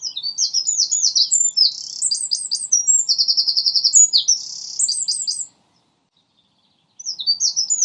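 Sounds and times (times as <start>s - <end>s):
common nightingales singing at Lodge Hill: 0.0s - 7.8s.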